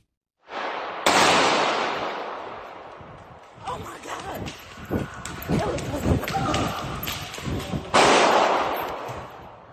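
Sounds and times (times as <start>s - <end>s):
gunshots in a large mall: 0.5s - 3.0s, 5.7s - 9.4s.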